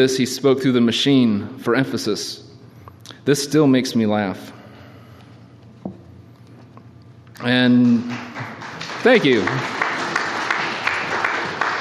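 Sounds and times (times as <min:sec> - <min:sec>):
speech: 0:00.0 - 0:02.5, 0:03.2 - 0:04.6, 0:07.4 - 0:09.8
audience applause at a talk: 0:07.5 - 0:11.8.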